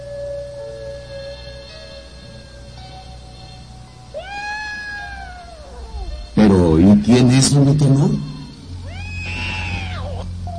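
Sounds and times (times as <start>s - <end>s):
steady low hum: 0.0s - 10.5s
female house cat meowing: 4.1s - 7.0s, 7.8s - 10.5s
speech: 6.5s - 8.3s.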